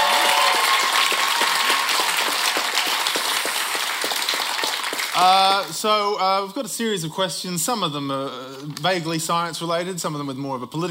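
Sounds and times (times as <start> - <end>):
audience applauding quiz contestants: 0.0 - 5.7
speech: 5.2 - 10.8.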